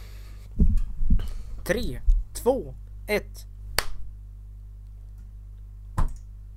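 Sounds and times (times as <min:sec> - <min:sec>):
steady low hum: 0:00.0 - 0:06.5
speech: 0:01.7 - 0:03.5
sharp hand claps: 0:03.8 - 0:04.0.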